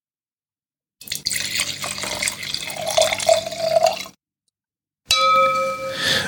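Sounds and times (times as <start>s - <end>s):
white wine poured from bottle into a glass: 1.0s - 4.2s
bright glassy ringing tone: 5.1s - 6.2s.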